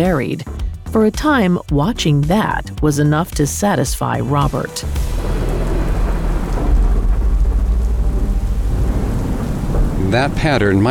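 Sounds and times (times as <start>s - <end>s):
speech: 0.0s - 5.2s, 10.1s - 10.8s
deep rumbling thunder in a summer evening storm: 4.8s - 10.8s
steady downpour of rain in a summer evening storm: 4.9s - 10.8s.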